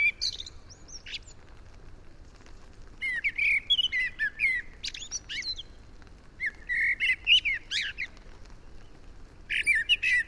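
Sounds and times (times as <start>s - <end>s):
Eurasian blackbird Turdus merula singing: 0.0s - 1.4s, 3.0s - 5.8s, 6.4s - 8.2s, 9.5s - 10.2s.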